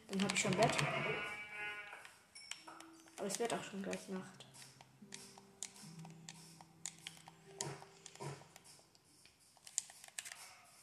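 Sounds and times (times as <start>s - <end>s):
speech: 0.1s - 1.4s, 3.2s - 4.4s
video-game sheep bleating: 0.8s - 2.1s.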